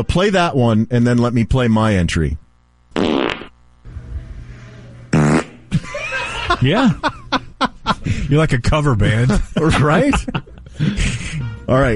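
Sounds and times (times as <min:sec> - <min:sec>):
speech: 0:00.0 - 0:02.4, 0:06.6 - 0:07.4, 0:08.3 - 0:11.9
loud fart bursts: 0:02.9 - 0:03.6, 0:05.1 - 0:05.7
laughter: 0:05.7 - 0:08.3, 0:09.1 - 0:11.5.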